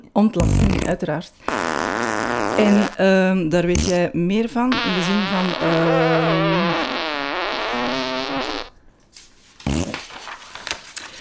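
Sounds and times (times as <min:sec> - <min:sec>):
speech: 0:00.2 - 0:01.6, 0:02.6 - 0:06.9
long wavering fart: 0:00.4 - 0:03.0, 0:03.7 - 0:04.0, 0:04.7 - 0:08.7, 0:09.6 - 0:10.2
rustling: 0:04.6 - 0:11.1.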